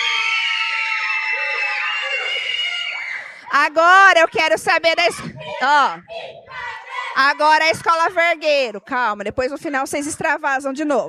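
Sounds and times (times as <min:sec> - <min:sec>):
large crowd of young voices shouting a supporters' cheer for a school team: 0:00.0 - 0:03.5, 0:05.0 - 0:08.1
speech: 0:03.6 - 0:06.3, 0:07.2 - 0:11.0.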